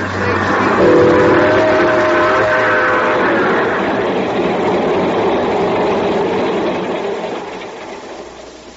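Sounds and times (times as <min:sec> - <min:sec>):
train rumbling and hissing as it pulls away from the station: 0:00.0 - 0:08.7
brief whistle-like tone: 0:00.8 - 0:03.4.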